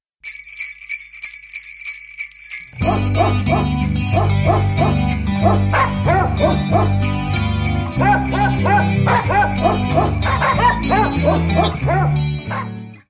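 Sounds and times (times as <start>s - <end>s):
dogs barking: 2.8s - 12.9s.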